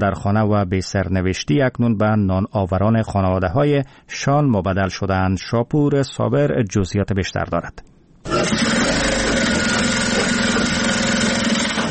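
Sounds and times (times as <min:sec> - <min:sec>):
speech: 0:00.0 - 0:08.7
electric sewing machines running in a workshop: 0:08.3 - 0:11.8.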